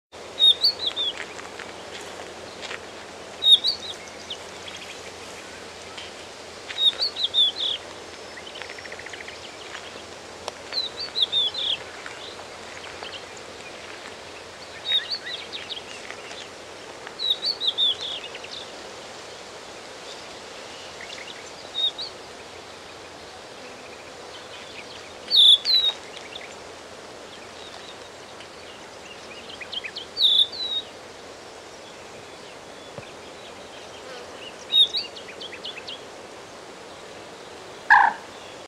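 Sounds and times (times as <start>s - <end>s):
crested lark Galerida cristata singing: 0.3s - 1.5s, 3.4s - 6.1s, 6.7s - 10.0s, 10.7s - 16.5s, 17.2s - 18.7s, 20.7s - 23.2s, 23.8s - 26.6s, 27.3s - 31.0s, 31.8s - 36.1s, 36.9s - 38.6s.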